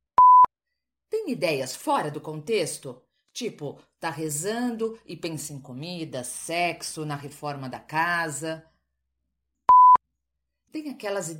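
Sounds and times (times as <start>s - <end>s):
short electronic beep: 0.2s - 0.5s, 9.7s - 10.0s
speech: 1.2s - 8.7s, 10.7s - 11.3s.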